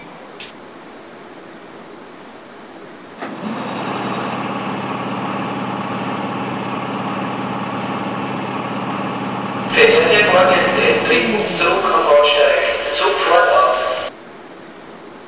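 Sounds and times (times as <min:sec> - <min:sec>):
OEBB class 1110 locomotive sounds from Loksound H0 Roco model: 0:03.3 - 0:14.1.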